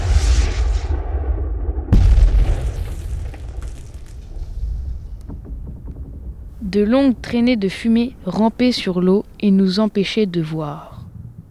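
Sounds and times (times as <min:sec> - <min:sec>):
naval cannons firing at full charge in a sea battle: 0:00.0 - 0:09.1
speech: 0:06.7 - 0:10.9.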